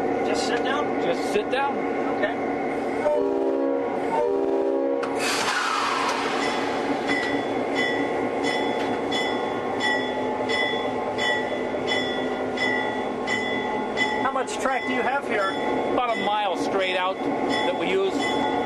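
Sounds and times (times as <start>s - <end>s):
speech: 0.6s - 3.4s
locomotive horn blasts: 3.0s - 5.2s
locomotive burst of air: 5.1s - 6.9s
locomotive steady regular clanking with a bright ringing tone: 6.3s - 18.6s.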